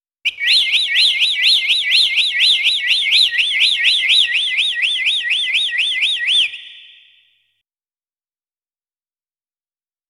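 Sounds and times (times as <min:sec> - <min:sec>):
bird chirping in rising whistled notes: 0:00.3 - 0:07.4.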